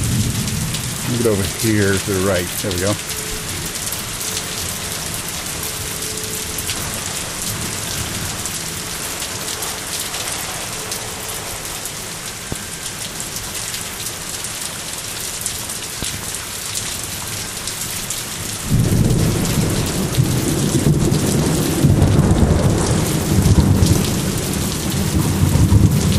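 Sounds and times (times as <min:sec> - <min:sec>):
deep rumble of thunder: 0:00.0 - 0:12.3, 0:18.6 - 0:26.1
heavy rain pouring: 0:00.0 - 0:26.1
speech: 0:01.2 - 0:03.3.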